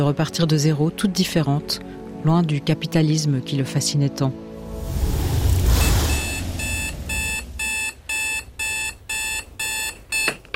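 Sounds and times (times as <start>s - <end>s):
speech: 0.0s - 5.2s
brief rush of noise: 4.6s - 8.6s
alarm clock ringing in shrill electronic beep bursts: 6.3s - 10.4s.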